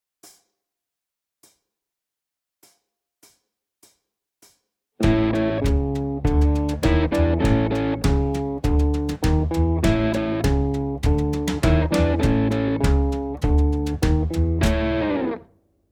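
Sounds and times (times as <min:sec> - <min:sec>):
Chicago blues guitar: 0:05.0 - 0:15.4.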